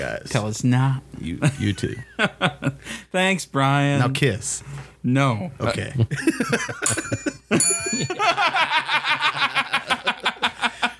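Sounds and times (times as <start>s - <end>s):
speech: 0.0s - 10.0s
people laughing: 1.4s - 2.9s, 6.1s - 10.9s
small bell ringing: 6.8s - 8.5s.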